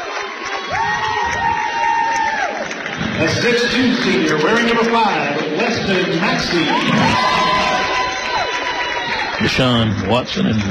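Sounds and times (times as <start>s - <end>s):
large crowd cheering at a high school game: 0.0s - 10.6s
crowd whoops and shouts: 0.3s - 2.7s, 6.5s - 9.4s
speech: 3.2s - 7.6s, 9.4s - 10.6s.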